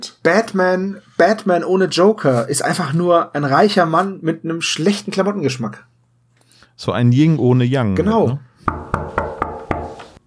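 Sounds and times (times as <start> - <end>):
speech: 0.2 - 5.9, 6.8 - 8.8
knocking on a door: 8.7 - 10.0.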